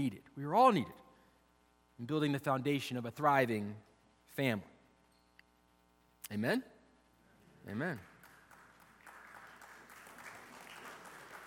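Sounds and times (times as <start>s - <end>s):
speech: 0.0s - 1.0s, 2.0s - 4.7s, 6.2s - 6.7s, 7.6s - 8.1s
church audience clapping: 7.8s - 11.4s.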